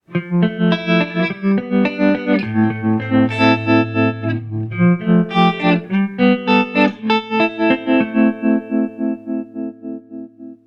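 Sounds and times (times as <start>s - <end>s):
soft rock music: 0.1s - 9.6s.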